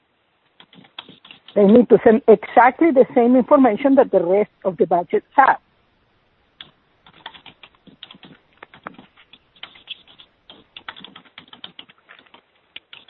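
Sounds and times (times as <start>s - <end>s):
typing on a computer keyboard: 0.6s - 1.6s, 7.0s - 13.0s
speech: 1.6s - 5.6s.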